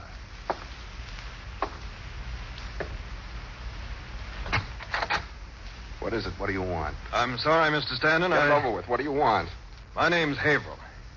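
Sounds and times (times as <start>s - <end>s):
slow evenly spaced footsteps: 0.2s - 3.2s
speech: 6.1s - 10.8s.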